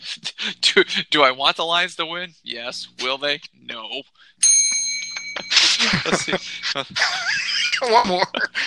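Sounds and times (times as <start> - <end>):
laughter: 0.0 - 1.2, 5.0 - 8.6
speech: 0.4 - 4.4, 5.8 - 8.6
bright metallic bell ding: 4.4 - 6.9.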